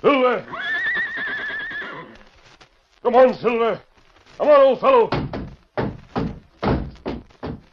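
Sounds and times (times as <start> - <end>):
speech: 0.0 - 0.7, 3.0 - 5.2
horse whinnying: 0.4 - 2.2
horse knocking against a wooden door: 5.1 - 7.7.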